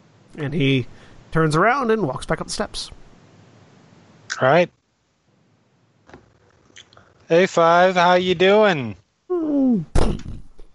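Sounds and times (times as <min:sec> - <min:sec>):
speech: 0:00.4 - 0:03.0, 0:04.4 - 0:04.8, 0:07.3 - 0:09.0
door closing with a solid thud: 0:09.9 - 0:10.6.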